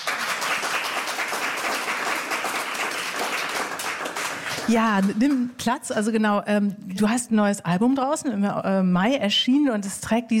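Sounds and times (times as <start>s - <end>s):
crowd applauding: 0.0s - 5.6s
speech: 4.7s - 10.3s.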